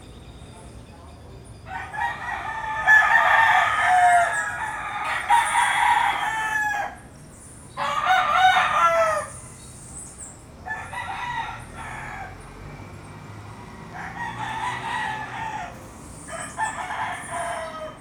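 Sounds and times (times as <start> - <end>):
low background noise: 0.0 - 18.0
rooster crowing at dawn in Puerto Rico: 1.7 - 7.0, 7.8 - 9.4, 10.6 - 12.5, 13.6 - 18.0.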